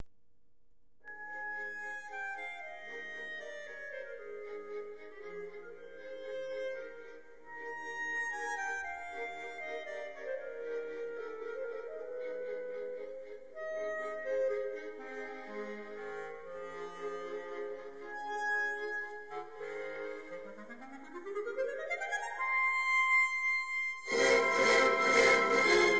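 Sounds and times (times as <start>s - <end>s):
clarinet: 1.1s - 25.9s.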